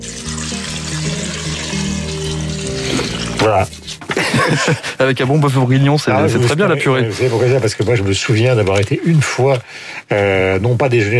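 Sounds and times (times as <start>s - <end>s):
water pouring over potatoes in a pot: 0.0s - 3.7s
speech: 3.4s - 11.1s
laughter: 4.0s - 5.2s.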